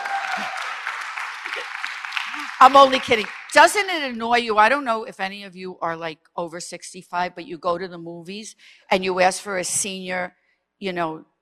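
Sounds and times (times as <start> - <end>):
audience applause: 0.0 - 3.9
speech: 0.4 - 0.6, 2.4 - 11.3.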